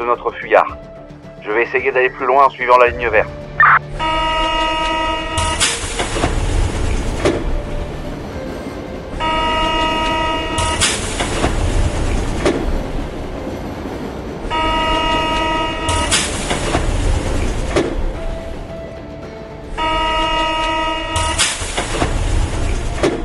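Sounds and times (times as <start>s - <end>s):
speech: 0.0s - 4.2s
rumble and clatter of rail cars at a busy railway station: 0.0s - 23.2s
train horn blasts: 3.8s - 6.5s, 8.9s - 11.8s, 14.4s - 16.6s, 19.6s - 21.7s.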